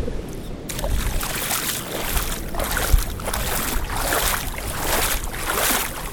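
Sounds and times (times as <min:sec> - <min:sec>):
squishing footsteps wading through a river: 0:00.7 - 0:06.1.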